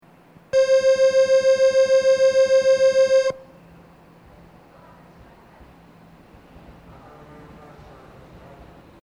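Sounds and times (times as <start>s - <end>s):
train departure buzzer recorded from a flat speaker: 0.6s - 3.4s.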